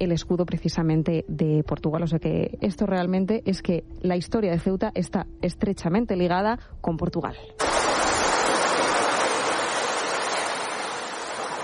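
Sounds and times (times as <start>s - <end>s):
speech: 0.0s - 7.7s
sea waves: 7.6s - 11.6s.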